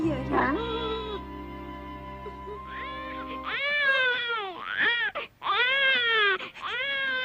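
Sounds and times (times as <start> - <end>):
sustained musical tone: 0.0 - 4.2
newborn baby crying: 0.4 - 7.2.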